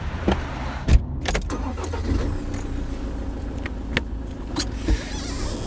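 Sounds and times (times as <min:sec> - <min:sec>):
car engine starting and running: 0:00.1 - 0:05.6
sharp clicks and knocks: 0:00.3 - 0:00.6, 0:01.3 - 0:05.1.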